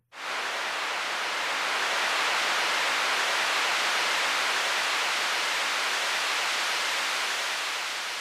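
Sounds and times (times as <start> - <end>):
synthesized rain made from white noise: 0.0 - 8.1.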